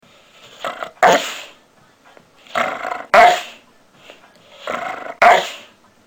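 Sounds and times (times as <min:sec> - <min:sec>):
Labrador Retriever barking: 0:01.0 - 0:01.5, 0:03.1 - 0:03.6, 0:05.1 - 0:05.7.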